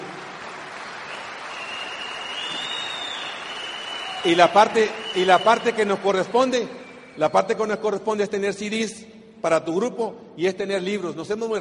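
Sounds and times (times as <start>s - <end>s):
sustained applause from a sizable crowd: 0.0s - 7.8s
faint whistle: 1.1s - 8.2s
speech: 4.2s - 11.5s.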